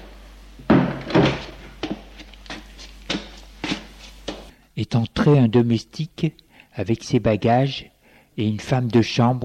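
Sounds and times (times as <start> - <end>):
knocking on a door: 0.6 - 1.5
speech: 4.9 - 9.4.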